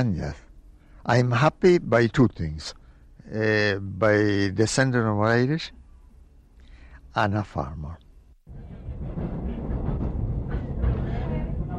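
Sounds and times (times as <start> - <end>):
speech: 0.0 - 0.4, 1.0 - 5.8, 7.1 - 8.0
train running on rails heard from on board: 8.5 - 11.7.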